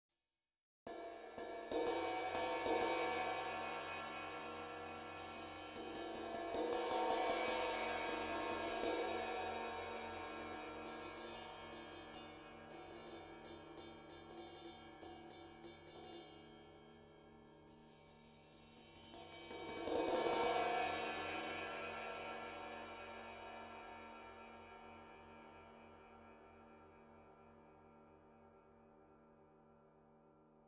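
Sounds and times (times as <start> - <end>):
brushes on 20 inch ride cymbal and bell, acoustic drums: 0.9 - 24.2.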